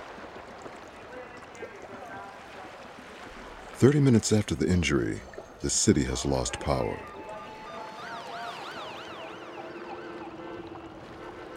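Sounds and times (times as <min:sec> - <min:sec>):
speech: 0:03.8 - 0:07.1
ambulance siren yelping: 0:05.9 - 0:11.5.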